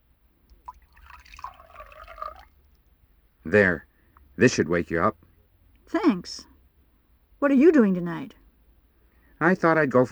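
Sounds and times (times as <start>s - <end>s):
black coffee pouring into a cup: 0.5s - 2.8s
speech: 3.5s - 5.3s, 5.9s - 6.5s, 7.4s - 8.4s, 9.4s - 10.1s.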